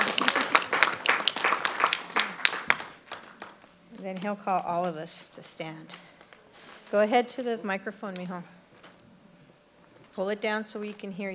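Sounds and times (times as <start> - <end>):
applause at a community gathering: 0.0 - 3.8
speech: 4.0 - 6.1, 6.9 - 8.6, 10.2 - 11.3.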